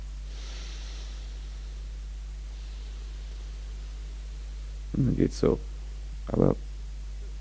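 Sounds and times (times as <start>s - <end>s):
slow deep breathing: 0.0s - 5.0s
steady low hum: 0.0s - 7.3s
speech: 5.0s - 5.7s, 6.3s - 6.7s.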